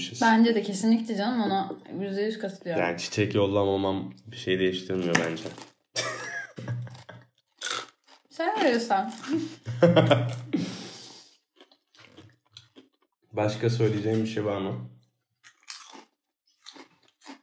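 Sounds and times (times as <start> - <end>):
speech: 0.0 - 5.7, 8.4 - 10.8, 13.4 - 15.0
laughter: 6.0 - 7.1, 9.2 - 10.7
crunchy chewing of dried apple: 6.8 - 9.6, 11.4 - 13.2, 15.4 - 17.4.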